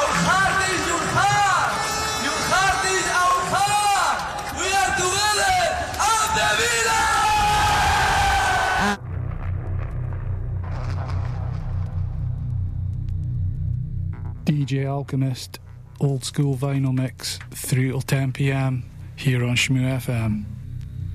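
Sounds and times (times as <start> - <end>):
large crowd of football fans cheering and shouting: 0.0 - 9.0
quiet low hum: 8.8 - 21.1
speech: 14.5 - 20.6.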